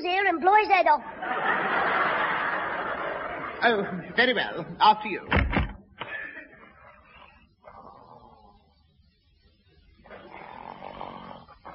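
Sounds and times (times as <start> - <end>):
speech: 0.0 - 1.8, 3.6 - 5.6
laughter: 1.0 - 4.6, 6.0 - 7.3
old man snoring loudly in his sleep: 10.1 - 11.7.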